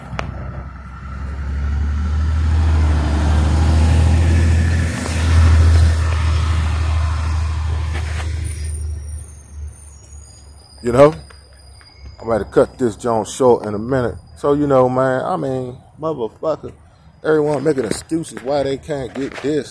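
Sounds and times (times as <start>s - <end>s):
heavy garbage truck engine drone rumbling past: 0.0s - 10.8s
speech: 10.9s - 11.2s, 12.3s - 19.6s.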